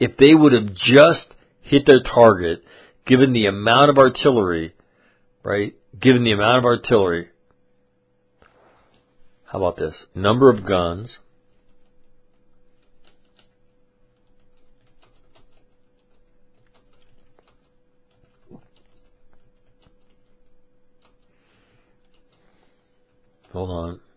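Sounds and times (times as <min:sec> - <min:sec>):
speech: 0:00.0 - 0:04.8, 0:05.4 - 0:07.3, 0:09.5 - 0:11.2, 0:23.6 - 0:24.0
low steady hum: 0:00.0 - 0:24.1
typing on a computer keyboard: 0:11.5 - 0:21.3, 0:22.0 - 0:23.8.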